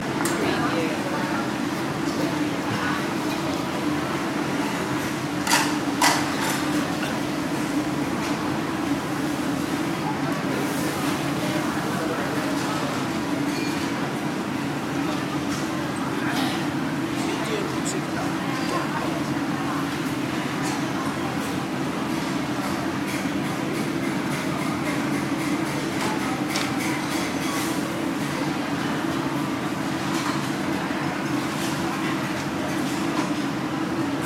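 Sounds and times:
food centre ambience in Singapore: 0:00.0 - 0:34.2.

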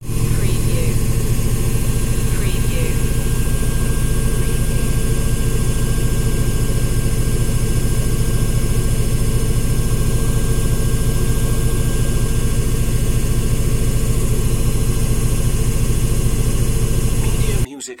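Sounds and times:
washing machine spin cycle: 0:00.0 - 0:17.7.

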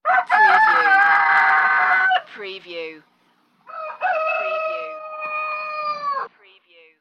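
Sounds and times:
rooster call: 0:00.0 - 0:02.3, 0:03.7 - 0:06.4.

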